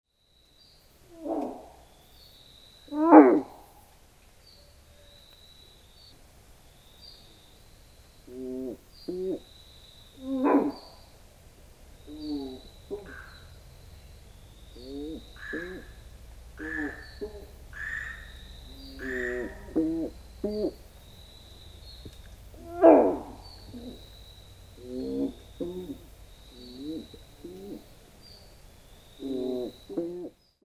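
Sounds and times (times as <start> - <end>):
horusutogaeru frog: 1.1 - 1.8, 2.9 - 3.8, 8.3 - 9.5, 10.2 - 11.0, 12.1 - 13.5, 14.8 - 16.0, 16.6 - 20.8, 22.6 - 24.2, 24.8 - 27.8, 29.1 - 30.4.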